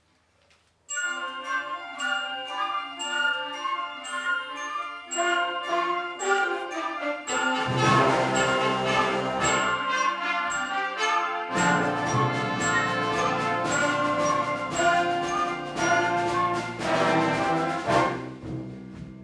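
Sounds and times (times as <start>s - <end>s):
bells ringing: 0.9s - 17.8s
band playing: 5.8s - 19.2s.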